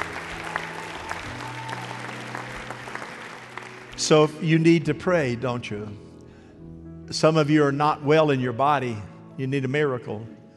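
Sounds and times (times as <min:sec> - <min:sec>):
congregation applauding: 0:00.0 - 0:04.4
speech: 0:04.0 - 0:06.0, 0:07.1 - 0:10.4.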